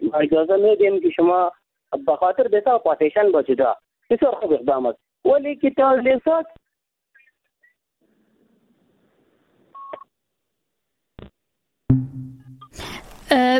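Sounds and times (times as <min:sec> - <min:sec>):
speech: 0:00.1 - 0:06.6, 0:13.3 - 0:13.5
short electronic telephone beep as a phone call cuts off: 0:09.8 - 0:10.1.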